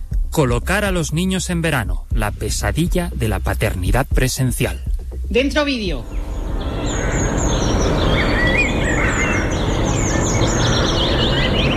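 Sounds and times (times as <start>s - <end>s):
speech: 0.4s - 6.2s
birds chirping and singing in a winter park: 5.7s - 11.7s.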